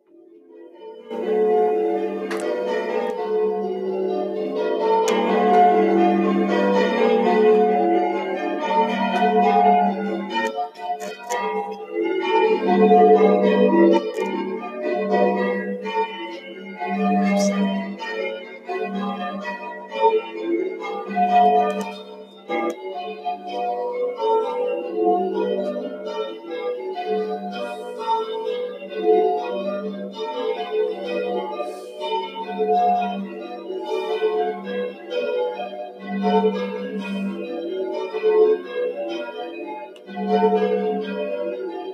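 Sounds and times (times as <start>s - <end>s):
full peal of church bells: 0.5s - 41.9s.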